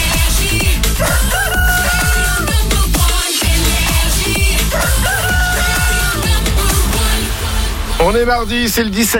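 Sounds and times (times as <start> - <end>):
booming music bed of a morning radio show jingle: 0.0 - 9.1
rooster crowing: 1.0 - 2.6, 4.7 - 6.4
speech: 8.1 - 9.1.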